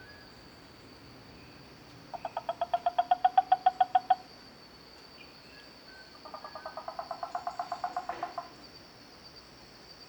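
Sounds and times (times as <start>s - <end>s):
harp frog calling: 2.1s - 4.2s, 6.1s - 8.6s.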